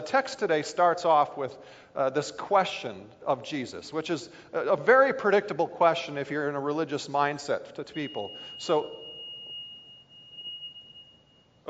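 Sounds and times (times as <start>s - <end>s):
speech: 0.1s - 9.0s
high-pitched electronic alarm tone: 7.9s - 11.6s.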